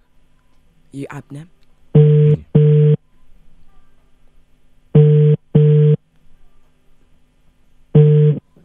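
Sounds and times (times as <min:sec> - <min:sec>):
speech: 0:00.9 - 0:01.6
phone ringback tone during outgoing call: 0:02.0 - 0:03.0, 0:04.9 - 0:06.0, 0:07.9 - 0:08.5.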